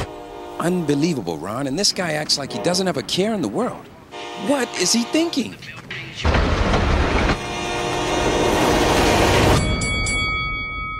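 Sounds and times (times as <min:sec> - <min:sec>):
horn-like tones: 0:00.0 - 0:01.4, 0:02.3 - 0:03.0, 0:04.1 - 0:05.6, 0:07.3 - 0:09.6
train passing on railroad tracks: 0:00.0 - 0:10.9
speech: 0:00.6 - 0:06.6.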